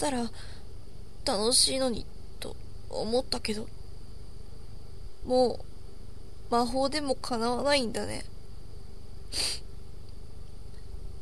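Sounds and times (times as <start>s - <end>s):
speech: 0.0s - 0.6s, 1.2s - 3.8s, 5.2s - 5.7s, 6.5s - 8.3s, 9.3s - 9.6s
faint hum: 0.0s - 11.2s
boy sniffling through the nose: 9.3s - 9.6s.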